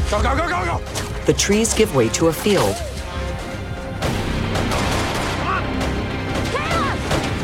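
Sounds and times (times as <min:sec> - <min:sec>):
speech: 0:00.1 - 0:02.9
gunfire exchanged across a field at the edge of a forest: 0:04.0 - 0:07.4.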